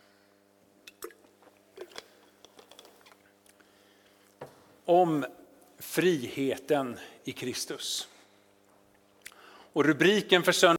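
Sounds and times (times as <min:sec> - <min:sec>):
low steady hum: 0:00.0 - 0:10.7
wet mouth clicks: 0:00.8 - 0:03.6, 0:08.9 - 0:09.4
person sipping water: 0:00.8 - 0:04.4
speech: 0:04.9 - 0:05.4, 0:06.0 - 0:08.1, 0:09.8 - 0:10.7.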